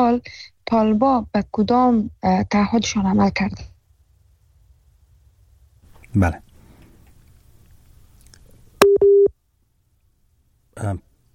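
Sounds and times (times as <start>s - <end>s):
speech: 0.0s - 3.7s, 6.1s - 6.4s, 10.8s - 11.1s
busy tone after a dropped phone call: 8.8s - 9.3s.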